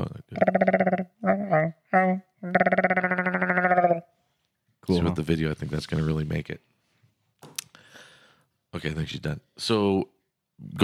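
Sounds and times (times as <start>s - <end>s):
voice imitating a Wookiee's warbling growl through a glass: 0.0s - 4.1s
speech: 4.9s - 6.7s, 8.8s - 10.1s.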